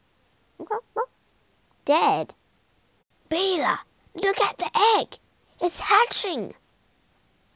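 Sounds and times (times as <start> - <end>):
rooster squawking harshly: 0.6 - 1.1
speech: 1.9 - 2.4, 3.3 - 6.6.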